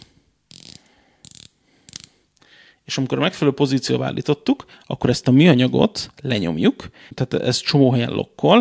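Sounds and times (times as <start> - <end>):
watch rotating bezel ratcheting: 0.5 - 2.1
speech: 2.9 - 8.5.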